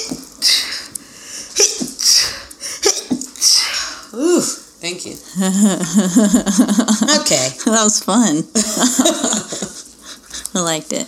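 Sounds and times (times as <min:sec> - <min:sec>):
person sneezing: 0:01.6 - 0:04.6
speech: 0:04.1 - 0:09.7, 0:10.6 - 0:11.0
laughter: 0:05.4 - 0:07.4, 0:08.6 - 0:10.3.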